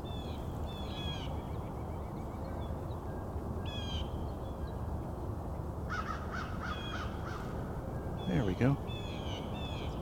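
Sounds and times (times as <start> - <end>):
outdoor noise: 0.0 - 10.0
American crows cawing: 5.9 - 7.6
speech: 8.6 - 8.9.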